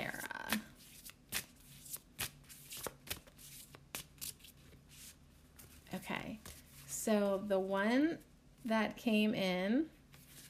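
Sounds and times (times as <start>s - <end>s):
tarot cards being shuffled by hand: 0.0s - 6.9s
speech: 7.1s - 10.0s.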